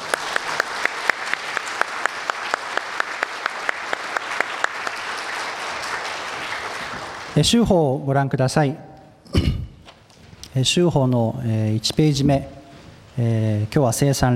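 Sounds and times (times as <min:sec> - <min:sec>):
church audience applauding: 0:00.0 - 0:07.6
speech: 0:07.4 - 0:08.9, 0:10.6 - 0:12.6, 0:13.2 - 0:14.3.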